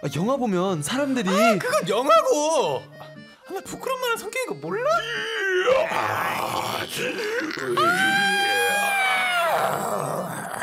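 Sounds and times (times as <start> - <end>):
speech: 0.0 - 10.4
girl pretending to be a zombie, groaning, wailing and screeching: 5.2 - 10.6.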